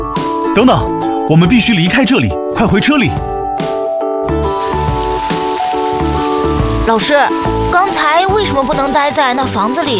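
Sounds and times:
rhythmic melodic music track: 0.0 - 9.9
speech: 0.6 - 3.3, 6.9 - 9.9
steady rain falling in a mountain area: 4.4 - 9.9.

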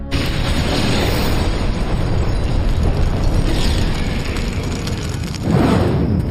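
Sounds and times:
bombs igniting more than 20 liters of diesel fuel: 0.1 - 6.1
rumbling roar of diesel fuel fire: 3.0 - 6.1.

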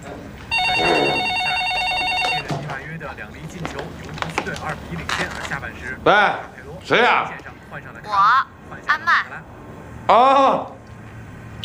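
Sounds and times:
noise: 0.0 - 11.6
electronic telephone ringing: 0.5 - 2.6
speech: 3.2 - 9.5, 10.1 - 10.8.

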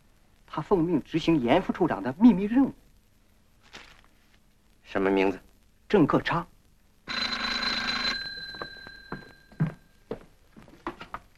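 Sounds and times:
speech: 0.5 - 2.8, 4.9 - 6.5
old-fashioned telephone bell ringing: 7.1 - 10.0.

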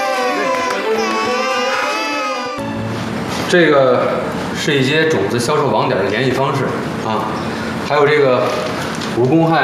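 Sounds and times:
baby crying: 0.0 - 2.7
speech: 3.5 - 9.6.

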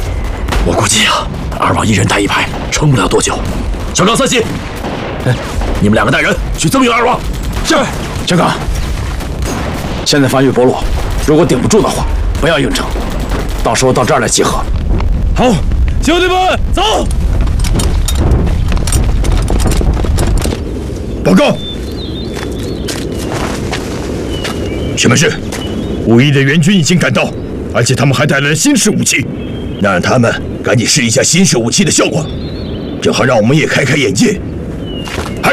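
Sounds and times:
heavy gunfire as Japanese troops attack a village: 0.0 - 20.6
artillery explosions as Japanese troops attack a village: 0.0 - 35.5
speech: 0.6 - 8.7, 10.1 - 17.9, 21.2 - 21.6, 25.0 - 25.4, 26.1 - 34.5, 35.1 - 35.5.

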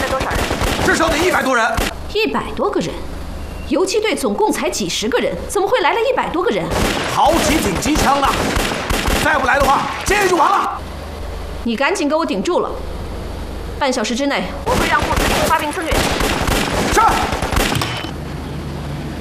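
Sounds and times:
machine gun fire during a guerrilla raid on a prison: 0.0 - 2.0, 6.7 - 10.6, 14.7 - 18.1
voices talking: 0.0 - 19.1.

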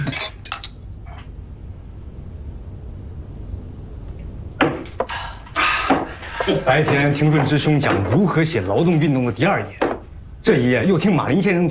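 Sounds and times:
glasses clinking in a toast: 0.0 - 1.2
low steady noise: 0.0 - 11.6
speech: 6.4 - 9.8, 10.4 - 11.6.

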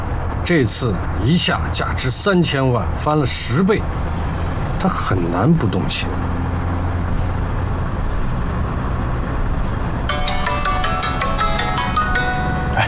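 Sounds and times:
steady low rumble of noise: 0.0 - 12.8
speech: 0.4 - 4.2, 4.8 - 6.4
phone ringtone for an incoming call, bright repeating electronic melody: 10.1 - 12.8.

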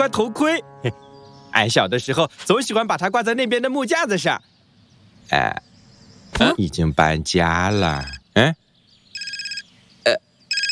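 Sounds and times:
speech: 0.0 - 4.5, 5.3 - 5.7, 6.3 - 8.6, 10.0 - 10.2
electronic telephone ringing: 9.2 - 9.7.

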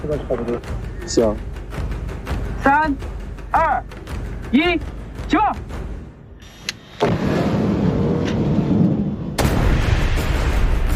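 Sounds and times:
speech: 0.0 - 1.9, 2.6 - 5.8
heavy ordnance demolition blast with roaring rumble: 7.0 - 10.9.

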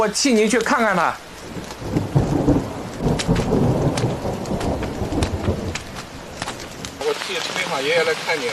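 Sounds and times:
speech: 0.0 - 1.6, 7.3 - 8.5
steady rain pouring outdoors: 0.0 - 8.5.

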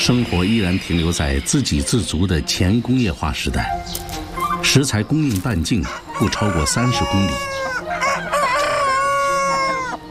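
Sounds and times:
speech: 0.0 - 7.7
rooster crowing: 5.8 - 10.0.

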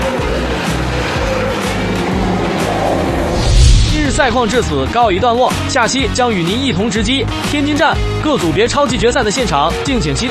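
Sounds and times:
race car engines roaring at a racetrack: 0.0 - 6.3
speech: 4.2 - 10.2.

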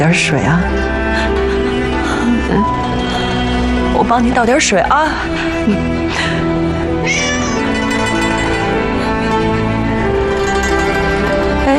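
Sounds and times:
speech: 0.0 - 1.4, 4.0 - 6.0
steady continuous music: 0.0 - 11.7
cat meowing: 7.0 - 7.8.

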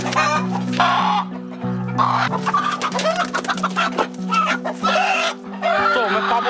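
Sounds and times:
free-range hill chicken clucking while running: 0.0 - 6.4.

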